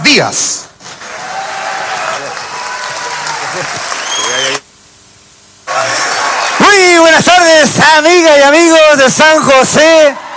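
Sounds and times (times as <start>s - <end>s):
speech: 0.1s - 0.6s, 3.6s - 4.6s, 7.2s - 10.2s
audience applause with many hands clapping: 1.0s - 4.6s, 5.7s - 7.1s, 9.9s - 10.3s.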